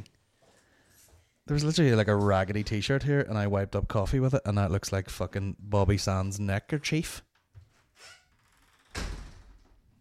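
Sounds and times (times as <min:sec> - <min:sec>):
speech: 0:01.5 - 0:07.3
door slamming shut: 0:08.9 - 0:09.8.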